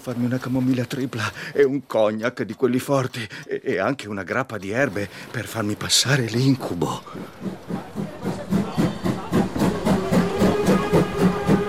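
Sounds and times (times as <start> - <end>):
speech: 0.0 - 8.0
train rumbling past a station platform with clickety-clack of wheels: 6.4 - 11.6.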